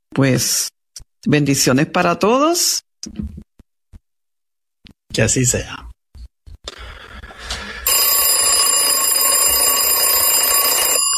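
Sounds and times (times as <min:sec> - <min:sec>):
speech: 0:00.2 - 0:03.4, 0:05.2 - 0:05.9
alarm clock metallic bell ringing: 0:07.9 - 0:11.1.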